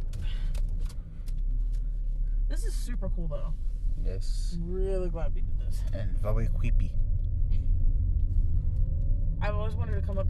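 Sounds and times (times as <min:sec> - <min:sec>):
car engine rumbling while reversing: 0:00.0 - 0:10.2
speech: 0:02.5 - 0:07.2, 0:09.4 - 0:10.2.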